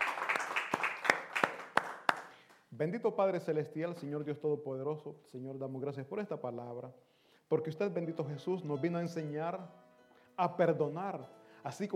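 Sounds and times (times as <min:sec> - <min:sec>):
audience applauding: 0:00.0 - 0:02.4
speech: 0:02.8 - 0:09.8, 0:10.4 - 0:11.9.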